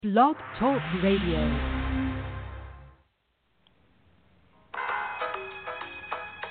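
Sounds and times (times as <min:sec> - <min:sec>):
speech: 0:00.0 - 0:01.8
burst of loud noise: 0:00.4 - 0:03.1
phone ringtone: 0:04.8 - 0:06.4.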